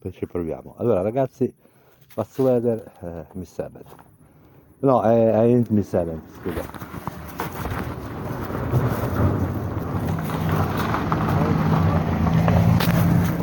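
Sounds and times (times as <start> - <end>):
speech: 0.0 - 4.1, 4.8 - 7.1
car passing by: 8.1 - 13.4.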